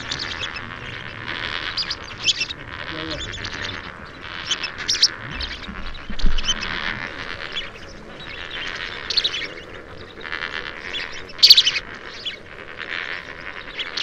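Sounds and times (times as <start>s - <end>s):
lesser flamingo flock nasal honking and gabbling calls: 0.0s - 14.0s.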